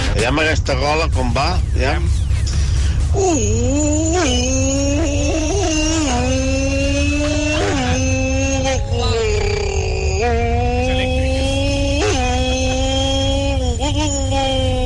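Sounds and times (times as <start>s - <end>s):
speech: 0.2s - 2.2s, 3.1s - 5.4s
superbike motorcycle engine roaring, shifting gears and braking: 3.5s - 14.7s.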